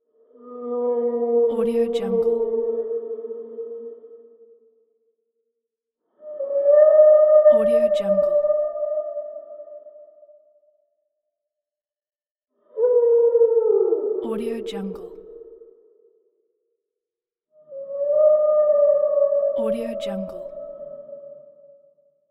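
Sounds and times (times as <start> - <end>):
whale: 0.0 - 5.0, 6.0 - 10.8, 12.6 - 14.3, 17.5 - 22.2.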